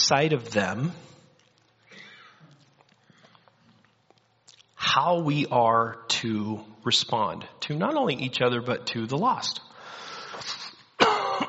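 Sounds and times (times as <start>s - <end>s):
speech: 0.1s - 1.2s, 5.0s - 9.7s
dry cough: 11.0s - 11.4s
rough throaty throat clearing: 11.0s - 11.4s.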